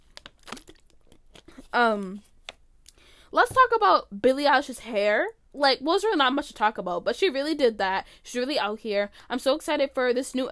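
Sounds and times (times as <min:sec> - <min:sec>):
plastic water bottle crinkling and clicking: 0:00.0 - 0:01.7
speech: 0:01.7 - 0:02.3, 0:03.3 - 0:10.5.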